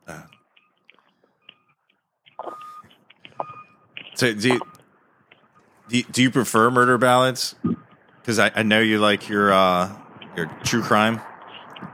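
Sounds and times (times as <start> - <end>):
short electronic beeps at a steady pitch: 0.2 - 6.2, 7.6 - 8.3
speech: 4.2 - 4.7, 5.9 - 11.3.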